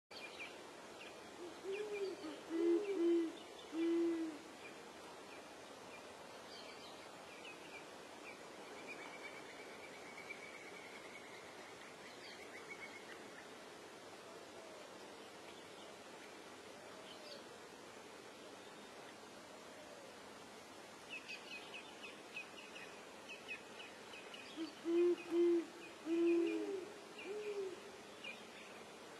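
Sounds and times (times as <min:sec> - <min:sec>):
great horned owl hooting: 0:01.4 - 0:04.5, 0:24.6 - 0:27.8.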